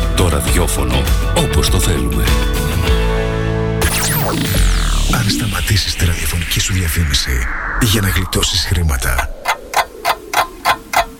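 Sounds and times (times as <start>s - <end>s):
speech: 0.2s - 3.0s, 4.3s - 9.5s
clock ticking: 9.2s - 11.1s.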